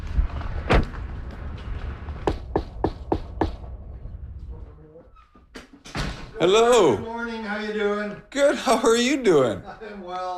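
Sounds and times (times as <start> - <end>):
faint noise: 0.0 - 10.3
thud: 0.2 - 4.6, 5.3 - 6.4
knocking on a door: 2.2 - 3.6
speech: 6.4 - 10.3.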